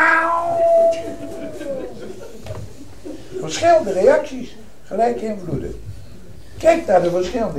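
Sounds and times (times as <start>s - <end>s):
voice imitating a cat yowl: 0.0s - 1.8s
laughter: 0.8s - 3.9s
speech: 3.5s - 5.9s, 6.6s - 7.5s.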